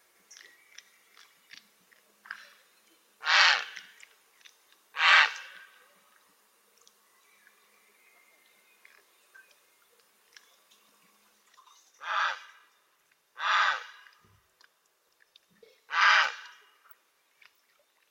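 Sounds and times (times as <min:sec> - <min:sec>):
Grey heron giving harsh rasping croaks: 0:03.2 - 0:03.8, 0:05.0 - 0:05.7, 0:12.0 - 0:12.6, 0:13.4 - 0:14.1, 0:15.9 - 0:16.6.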